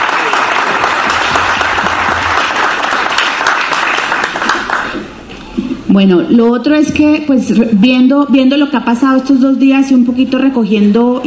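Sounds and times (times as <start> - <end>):
audience applause at a panel event: 0.0 - 5.2
speech: 5.9 - 11.2.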